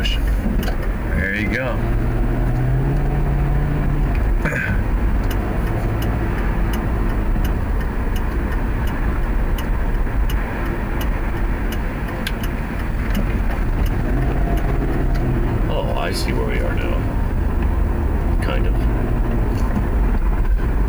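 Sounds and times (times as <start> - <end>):
car driving along a city street: 0.0 - 20.8
faint regular ticking clicks: 5.1 - 15.7.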